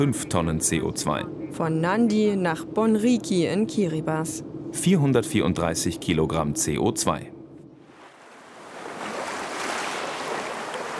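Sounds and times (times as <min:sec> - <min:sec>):
speech: 0:00.0 - 0:07.4
wind: 0:00.0 - 0:10.9
surf at the shoreline of a turquoise sea on Tarawa, Kiribati: 0:07.8 - 0:10.9.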